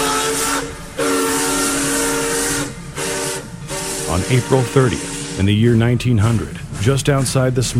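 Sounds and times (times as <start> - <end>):
steam locomotive whistle: 0.0 - 7.4
speech: 4.2 - 7.7.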